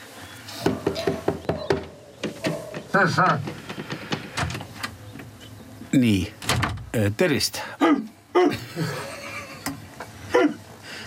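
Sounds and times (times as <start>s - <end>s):
movement: 0.5s - 5.9s
knocking on a house door: 0.6s - 4.6s
speech: 2.9s - 3.5s, 6.0s - 9.1s
laughter: 8.4s - 10.6s.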